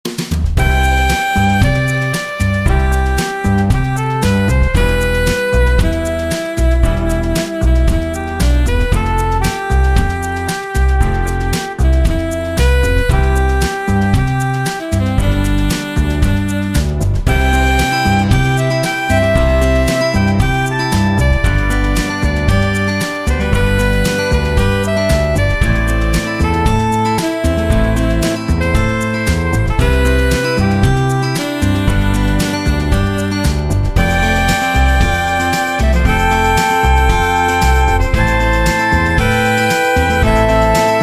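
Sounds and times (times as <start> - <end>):
jazz pop music mix: 0.0 - 41.0.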